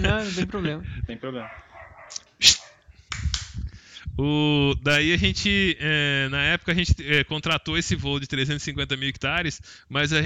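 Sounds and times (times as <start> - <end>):
laughter: 0.0 - 1.5
speech: 0.0 - 2.6, 4.2 - 10.2
faint noise: 0.0 - 10.2
small dogs barking and yipping: 1.4 - 2.9.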